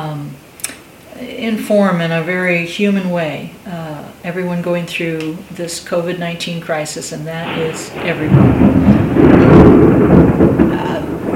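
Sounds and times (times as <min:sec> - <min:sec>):
speech: 0:01.2 - 0:08.9
rumble of thunder from a thunder and lightning storm: 0:07.4 - 0:11.3.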